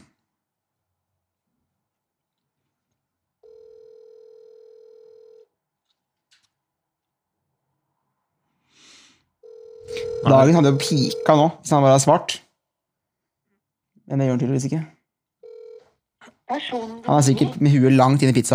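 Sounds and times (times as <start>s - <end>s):
outgoing phone call ringback tone: 3.4s - 5.5s, 9.4s - 11.5s, 15.4s - 15.9s
speech: 10.2s - 12.4s, 14.1s - 15.0s, 16.5s - 18.5s.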